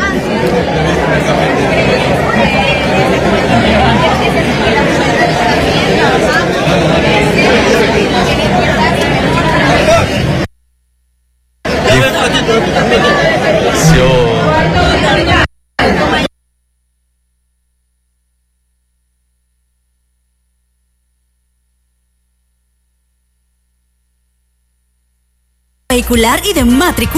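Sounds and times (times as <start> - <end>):
dense crowd chattering at a crowded gathering in Quevedo: 0.0 - 10.5, 11.6 - 16.3
speech: 26.0 - 27.1.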